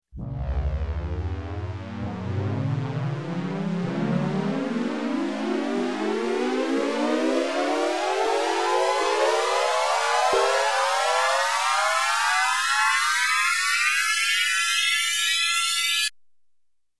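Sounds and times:
electronic space air raid siren: 0.2s - 16.1s.

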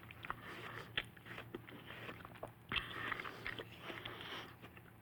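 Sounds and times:
vocal effect breathing: 0.3s - 1.0s, 1.8s - 4.7s.

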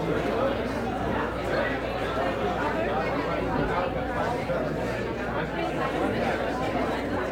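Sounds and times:
small boxing crowd ambience: 0.0s - 7.3s.

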